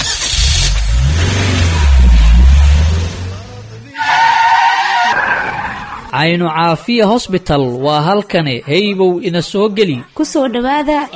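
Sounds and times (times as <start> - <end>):
car engine revving: 0.0 - 6.1
skidding tyres screeching: 0.0 - 6.2
speech: 6.2 - 11.1.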